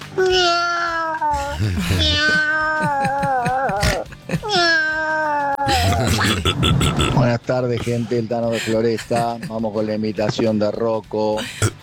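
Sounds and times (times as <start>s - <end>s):
person imitating cat meows: 0.0s - 7.2s
laughter: 1.4s - 4.7s, 5.7s - 9.7s
speech: 1.6s - 2.4s, 6.0s - 11.8s.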